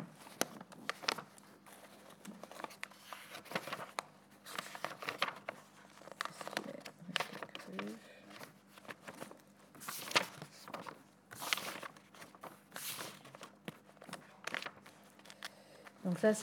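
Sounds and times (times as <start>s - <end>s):
paper sheets rustling while someone searches for a page: 0.0s - 16.4s
speech: 16.1s - 16.4s.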